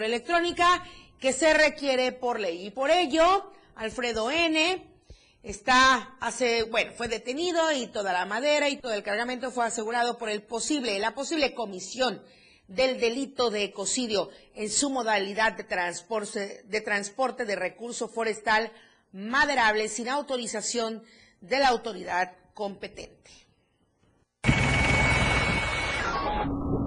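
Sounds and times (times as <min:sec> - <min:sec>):
speech: 0:00.0 - 0:23.4
low-flying helicopter over a tourist corridor around Tonalá and Puerto Arista: 0:24.4 - 0:26.7.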